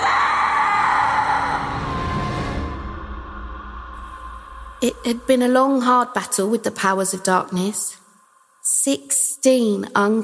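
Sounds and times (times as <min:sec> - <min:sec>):
loud piercing scream: 0:00.0 - 0:05.2
speech: 0:04.8 - 0:08.0, 0:08.8 - 0:10.2.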